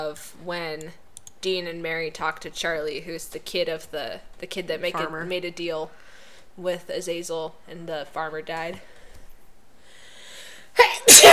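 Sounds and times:
speech: 0:00.0 - 0:06.0, 0:06.6 - 0:08.9, 0:10.8 - 0:11.3
person sneezing: 0:10.8 - 0:11.3.

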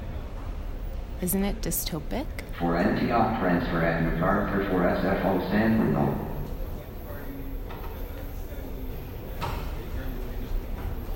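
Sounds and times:
commuter train approaching a station platform: 0:00.0 - 0:11.1
speech: 0:01.2 - 0:06.3
indistinct voices murmuring: 0:02.2 - 0:11.1.

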